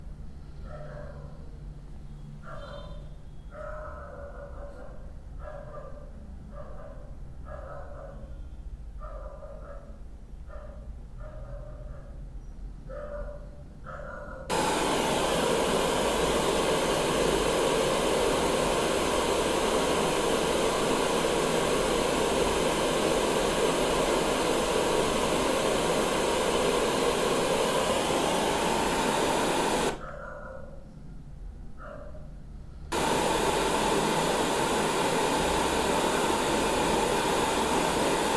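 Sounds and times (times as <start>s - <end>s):
barking dog: 0.6s - 1.4s, 2.4s - 8.3s, 9.0s - 12.2s, 12.9s - 14.5s, 29.2s - 30.8s, 31.8s - 32.3s
Lectrofan Micro 2 white noise: 14.5s - 30.1s, 32.8s - 38.3s.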